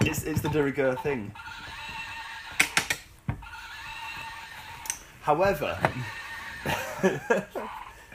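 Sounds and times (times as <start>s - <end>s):
horse neighing sound effect: 0.0s - 2.8s, 3.4s - 5.0s, 5.6s - 6.8s
speech: 0.2s - 1.5s, 5.3s - 8.1s
laughter: 6.6s - 8.1s.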